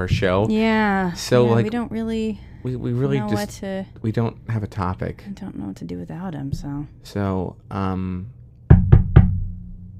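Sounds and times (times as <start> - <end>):
speech: 0.0 - 8.4
knocking on a studio door: 6.5 - 6.8, 8.7 - 9.7.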